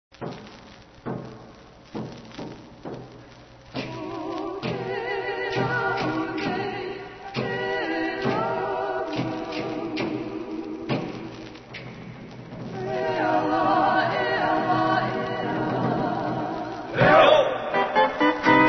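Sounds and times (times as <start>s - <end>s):
chanting: 3.8s - 12.0s, 12.7s - 18.6s.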